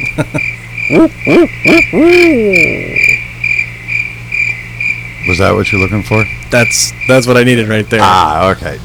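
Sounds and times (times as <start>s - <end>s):
chorus of chirping crickets: 0.0s - 8.8s
speech: 0.2s - 3.0s, 5.3s - 8.8s
person imitating owl hoots: 0.9s - 3.2s.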